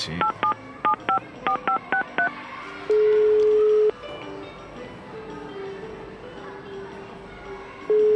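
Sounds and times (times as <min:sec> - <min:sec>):
telephone keypad dialling tones: 0:00.2 - 0:02.3, 0:07.9 - 0:08.1
telephone ringback tone: 0:00.2 - 0:02.3, 0:03.2 - 0:04.0, 0:07.9 - 0:08.1.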